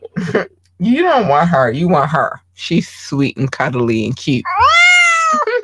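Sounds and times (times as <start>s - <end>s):
speech: 0.3s - 4.8s
cat yowling: 4.4s - 5.5s.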